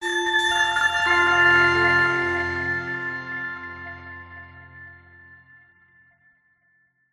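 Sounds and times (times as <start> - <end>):
short warm soft delayed musical logo: 0.9 - 5.4.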